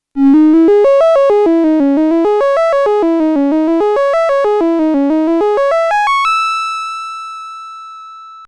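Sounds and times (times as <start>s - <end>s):
triangle wave synth lead: 0.2s - 6.3s.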